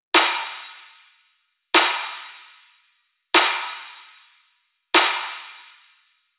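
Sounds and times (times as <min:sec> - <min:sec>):
snare drum with EQ and reverb: 0:00.2 - 0:00.9, 0:01.8 - 0:02.5, 0:03.4 - 0:04.2, 0:05.0 - 0:05.9.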